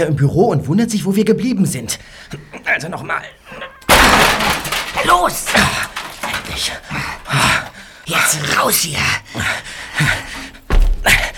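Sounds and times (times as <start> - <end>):
speech: 0.0 - 3.8, 5.0 - 5.9, 6.5 - 10.2
heavy thunk of a swinging door: 3.8 - 6.9.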